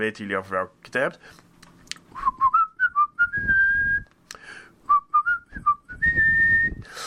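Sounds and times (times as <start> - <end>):
speech: 0.0 - 1.5
person whistling a film-theme melody: 2.2 - 4.1, 4.9 - 6.9.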